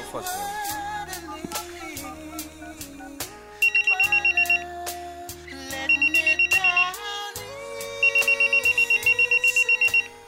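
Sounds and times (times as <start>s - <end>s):
musical backing: 0.0s - 10.2s
telephone ringing for an outgoing call: 3.0s - 4.7s, 5.7s - 7.0s, 8.0s - 10.1s.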